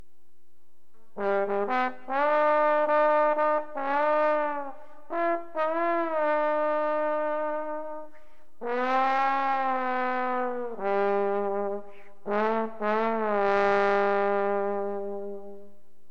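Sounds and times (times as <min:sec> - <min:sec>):
trombone: 0:01.0 - 0:15.8.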